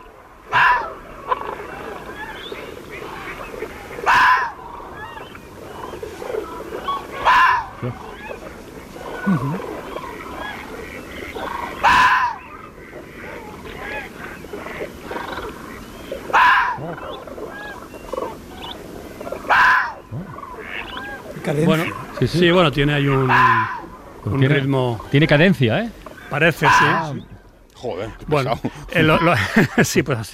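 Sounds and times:
fox barking at night: 0.0s - 3.4s, 4.0s - 14.2s, 15.2s - 22.2s, 23.0s - 24.1s, 26.5s - 27.2s
faint outdoor ambience: 0.0s - 30.3s
speech: 7.8s - 8.1s, 9.3s - 9.7s, 21.6s - 30.3s
laughter: 9.2s - 9.8s, 28.2s - 30.2s.

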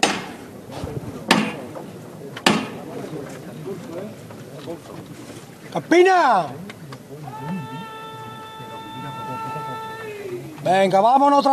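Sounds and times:
steady murmur of crowd voices and talk: 0.0s - 11.5s
hammer knocks on a religious procession float at a church doorway: 2.4s - 2.8s
speech: 4.7s - 6.7s, 10.6s - 11.5s.

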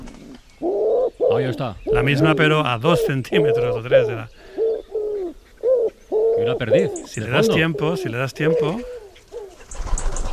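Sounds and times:
wood pigeon cooing: 0.0s - 10.3s
speech: 0.6s - 4.5s, 6.4s - 9.0s.

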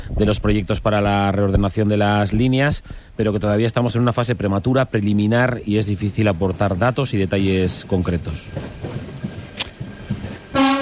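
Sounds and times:
train passing behind people standing outdoors: 0.0s - 10.7s
speech: 0.2s - 9.0s
train horn: 10.5s - 10.7s.

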